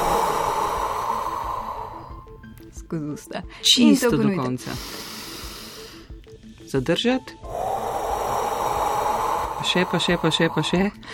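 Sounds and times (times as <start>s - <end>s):
deep breath in through the mouth in a breathing exercise: 0.0s - 2.5s, 4.7s - 6.2s, 7.5s - 11.1s
speech: 2.9s - 5.0s, 6.7s - 7.5s, 9.6s - 11.1s.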